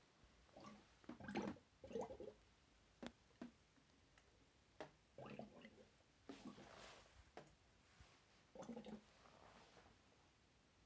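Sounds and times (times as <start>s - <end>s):
bubbling: 0.4s - 2.4s, 5.2s - 9.8s.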